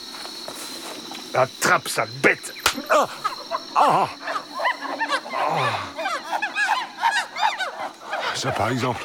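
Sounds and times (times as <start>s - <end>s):
speech: 1.3s - 4.2s, 5.5s - 5.9s, 8.4s - 9.0s
chorus of howler monkeys whooping and honking: 2.8s - 9.0s.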